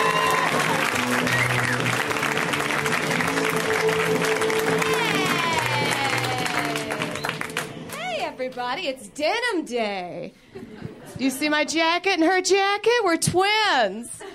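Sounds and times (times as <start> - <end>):
stand-up comedy audience clapping to welcome a comedian: 0.0 - 8.7
speech: 8.7 - 10.4, 11.2 - 14.2.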